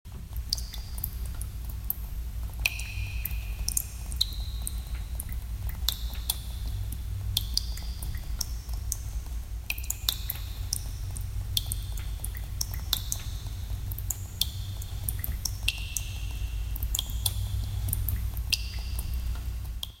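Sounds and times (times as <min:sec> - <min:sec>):
water dripping in a cave: 0:00.1 - 0:19.9.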